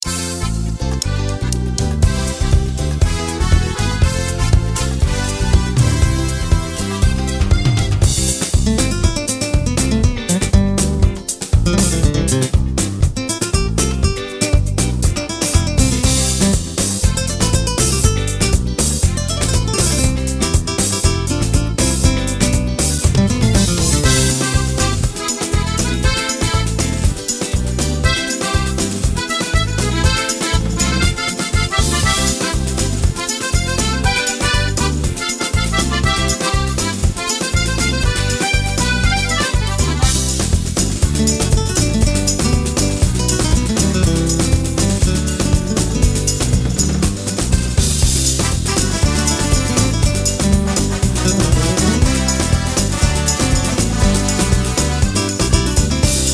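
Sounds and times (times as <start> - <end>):
soca music: 0.0 - 56.3.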